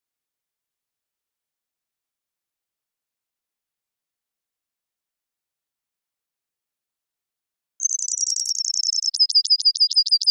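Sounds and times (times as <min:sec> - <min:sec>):
Brewer's sparrow males singing in a subalpine sagebrush meadow: 0:07.8 - 0:10.3.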